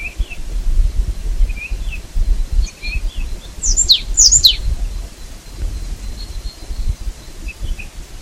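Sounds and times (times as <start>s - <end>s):
low background noise: 0.0s - 8.2s
marsh tit Poecile palustris call notes: 2.6s - 6.9s.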